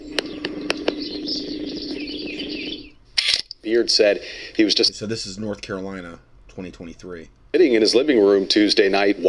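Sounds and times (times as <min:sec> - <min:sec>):
sharp bird calls: 0:00.0 - 0:03.4
birds chirping and twittering in the morning: 0:00.0 - 0:07.8
constant low hum: 0:00.0 - 0:09.2
speech: 0:03.7 - 0:09.2.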